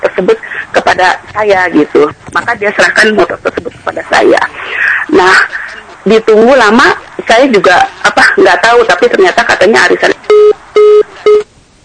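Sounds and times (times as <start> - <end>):
speech: 0.2 - 11.4
telephone line disconnecting with electronic beeps: 10.3 - 11.5.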